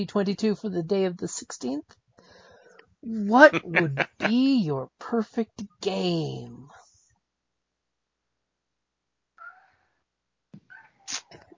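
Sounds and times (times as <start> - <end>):
speech: 0.0 - 2.0, 3.0 - 6.8
laughter: 3.3 - 4.4
cat meowing: 3.5 - 4.3.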